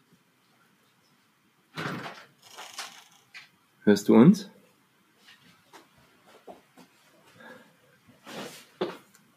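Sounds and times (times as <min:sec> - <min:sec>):
door shut with clunking sliding bumps and a firm thud: 0:01.7 - 0:03.5
speech: 0:03.9 - 0:04.6.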